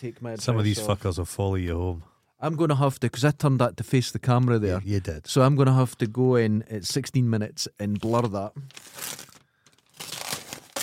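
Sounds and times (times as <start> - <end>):
speech: 0.0 - 9.3
brown paper bag crinkling and rustling: 8.0 - 10.8.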